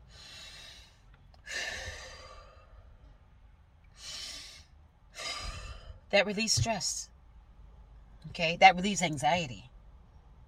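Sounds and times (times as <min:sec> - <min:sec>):
slow deep breathing: 0:00.0 - 0:03.1, 0:03.9 - 0:06.1
speech: 0:06.1 - 0:07.1, 0:08.2 - 0:09.7.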